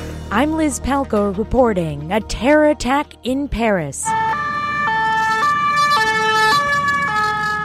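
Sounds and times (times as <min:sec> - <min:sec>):
steady rumble of city traffic in Paris: 0:00.1 - 0:07.6
speech: 0:00.3 - 0:04.3
two-tone emergency siren near the Opera Garnier in Paris after a knife attack: 0:04.0 - 0:07.6.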